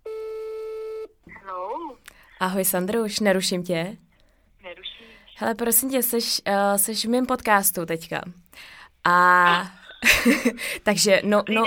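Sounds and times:
telephone ringing tone on an outgoing call: 0:00.1 - 0:01.2
speech: 0:02.4 - 0:04.0, 0:05.4 - 0:11.6
voice answering over the phone line: 0:04.6 - 0:05.5
laughter: 0:09.9 - 0:10.7.

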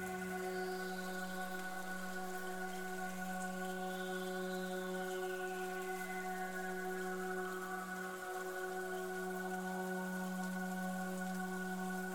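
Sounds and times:
steady rain pattering: 0:00.0 - 0:12.1.

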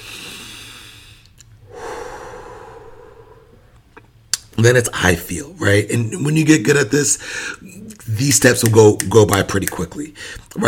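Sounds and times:
person taking a calming breath: 0:00.0 - 0:03.8, 0:07.2 - 0:07.6, 0:10.1 - 0:10.5
speech: 0:04.6 - 0:10.6.

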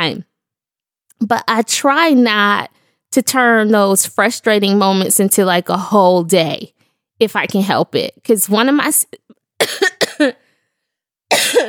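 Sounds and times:
speech: 0:00.0 - 0:00.3, 0:01.2 - 0:10.4, 0:11.3 - 0:11.6
person coughing: 0:09.6 - 0:10.4, 0:11.3 - 0:11.6.

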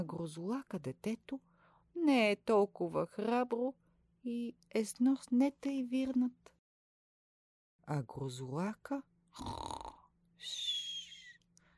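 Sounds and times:
speech: 0:00.0 - 0:06.6, 0:07.9 - 0:09.7, 0:10.4 - 0:10.8
person snoring: 0:09.4 - 0:10.1.

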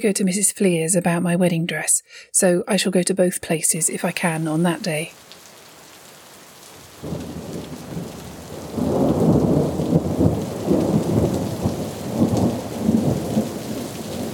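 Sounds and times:
speech: 0:00.0 - 0:05.3, 0:07.0 - 0:07.4
heavy rain pouring in a thunderstorm: 0:03.9 - 0:14.3
deep rolls of thunder: 0:07.0 - 0:14.3.

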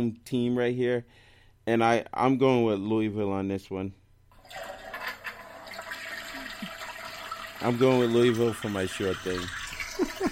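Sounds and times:
speech: 0:00.0 - 0:04.8, 0:07.6 - 0:10.3
toilet flushing: 0:04.3 - 0:10.3.

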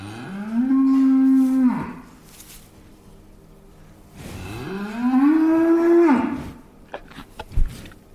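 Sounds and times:
dairy cows mooing in a milking barn: 0:00.0 - 0:02.1, 0:04.4 - 0:06.4.

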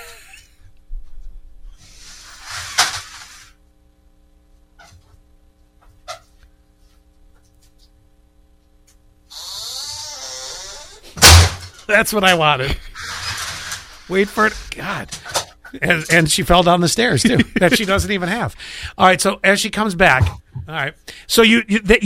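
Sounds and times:
screen door hinge squeaking: 0:09.3 - 0:11.0
screen door slapping shut with a bang: 0:11.2 - 0:11.6
speech: 0:11.9 - 0:12.9, 0:14.1 - 0:22.0
laughter: 0:17.1 - 0:18.2.

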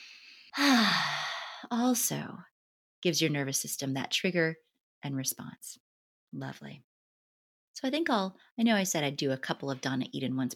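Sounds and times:
deep breath in during a guided breathing exercise: 0:00.0 - 0:01.7
speech: 0:01.7 - 0:06.9, 0:07.8 - 0:10.5.

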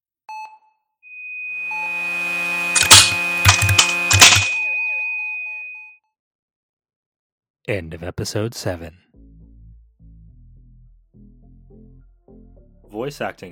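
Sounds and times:
loud high-pitched electronic beep: 0:01.1 - 0:06.0
speech: 0:07.7 - 0:09.0, 0:13.0 - 0:13.5.

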